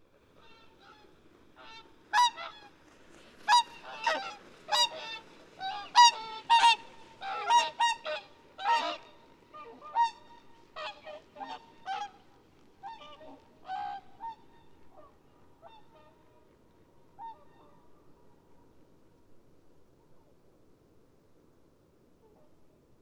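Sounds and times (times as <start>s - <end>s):
swan flight calls: 0.1s - 18.5s.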